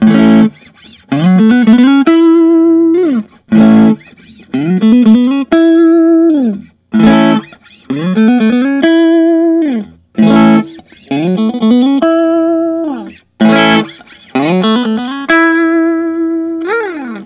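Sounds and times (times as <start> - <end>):
pre-CBS USA Stratocaster electric guitar: 0.0 - 17.2.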